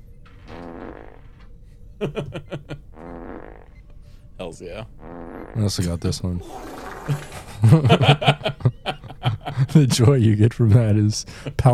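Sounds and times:
comedic soundboard fart sound effect: 0:00.4 - 0:01.4, 0:03.0 - 0:03.8, 0:05.0 - 0:07.5
laughter: 0:02.0 - 0:02.8, 0:05.8 - 0:10.8
speech: 0:02.0 - 0:02.8, 0:04.4 - 0:08.4, 0:09.7 - 0:11.7.

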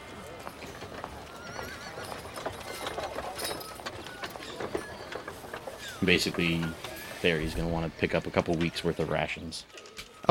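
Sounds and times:
horse hooves clip-clopping pulling a cart: 0:00.0 - 0:09.2
busy noisy ambient bustle: 0:00.0 - 0:10.2
horse whinnying: 0:01.2 - 0:08.3
speech: 0:06.0 - 0:10.2.

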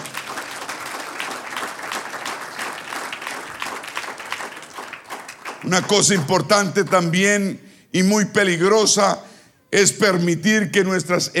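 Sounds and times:
audience of many hands clapping: 0:00.0 - 0:07.2
speech: 0:05.6 - 0:11.3.

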